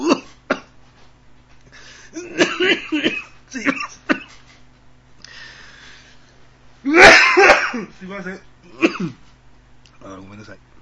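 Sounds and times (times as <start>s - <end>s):
person coughing from choking: 0.0s - 0.8s, 2.0s - 4.4s, 6.9s - 8.0s, 8.7s - 9.2s
low steady hum: 0.0s - 10.8s
speech: 8.0s - 9.2s.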